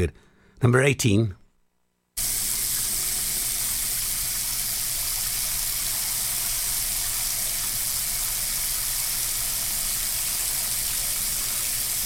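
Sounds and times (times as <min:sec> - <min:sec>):
speech: 0:00.0 - 0:01.4
water running from a shower head: 0:02.2 - 0:12.0.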